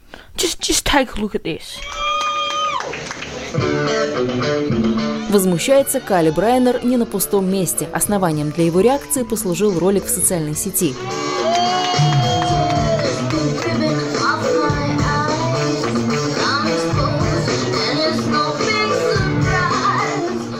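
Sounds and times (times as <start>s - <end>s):
speech: 0.4s - 2.0s, 2.9s - 11.4s
club audience whooping: 1.8s - 3.1s, 5.1s - 7.5s, 8.3s - 9.8s, 11.0s - 13.7s
packed club audience cheering and shouting at a drag performance: 1.9s - 3.6s, 4.7s - 10.1s, 10.9s - 20.5s.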